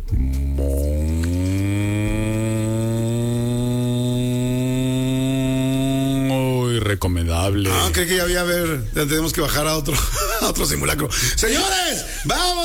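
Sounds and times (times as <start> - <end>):
cow mooing: 0.0 - 6.8
speech: 6.9 - 12.6.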